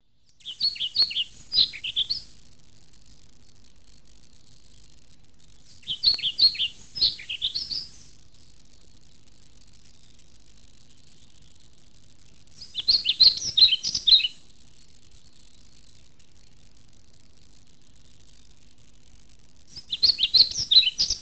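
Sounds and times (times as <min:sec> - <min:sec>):
flycatcher singing: 0:00.0 - 0:02.4, 0:04.6 - 0:08.6, 0:12.6 - 0:16.6, 0:19.7 - 0:21.1.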